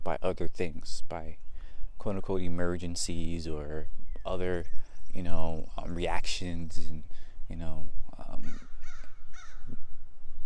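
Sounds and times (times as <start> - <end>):
steady hiss: 0.0 - 10.4
speech: 0.3 - 8.7
crow cawing from the top of a tree: 8.4 - 9.9.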